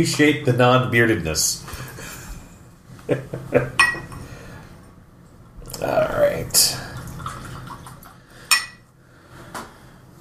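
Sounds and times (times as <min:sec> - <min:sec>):
speech: 0:00.0 - 0:01.9, 0:03.1 - 0:03.9, 0:05.8 - 0:06.8
glass clinking: 0:03.8 - 0:04.2, 0:08.5 - 0:08.8
whiskey pouring into a glass: 0:06.6 - 0:08.8.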